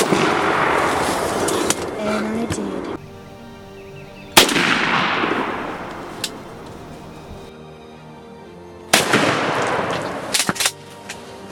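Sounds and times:
shotgun blasts while turkey hunting: 0.0 - 2.0, 4.4 - 6.6, 8.9 - 10.8.

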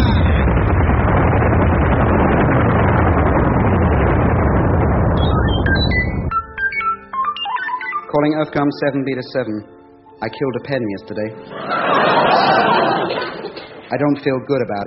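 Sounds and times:
sci-fi uranium cannon firing in a roaring blast: 0.0 - 6.3
short electronic beeps and chirps: 5.2 - 8.2
speech: 8.2 - 14.8
laughter: 11.4 - 14.2.

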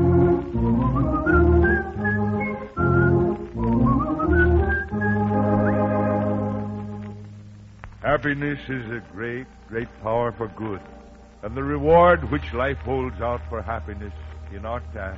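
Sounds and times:
steady musical accompaniment: 0.0 - 15.1
person whistling a lilting tune: 0.8 - 6.1
speech: 8.2 - 15.1.

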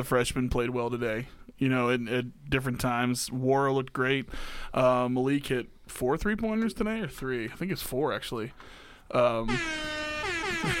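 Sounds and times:
speech: 0.0 - 10.7
air horn sound effect blast: 9.5 - 10.7.

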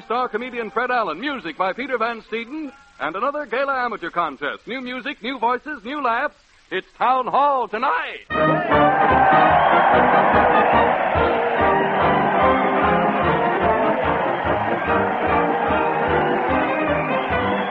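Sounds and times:
speech: 0.1 - 10.5
large crowd cheering at a parade: 8.3 - 17.6.

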